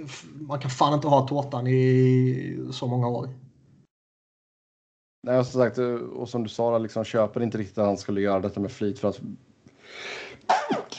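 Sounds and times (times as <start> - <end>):
speech: 0.0 - 3.4, 5.2 - 10.8
single human sneeze with breathy inhale: 10.5 - 10.9.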